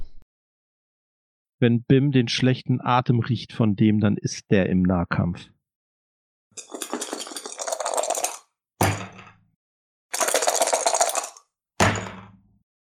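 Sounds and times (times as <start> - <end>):
speech: 1.6 - 5.6, 6.6 - 6.8
dice rattling in a cup: 6.6 - 8.4, 10.1 - 11.4
dice landing with a sharp clack on a table: 6.6 - 9.0, 10.1 - 12.1.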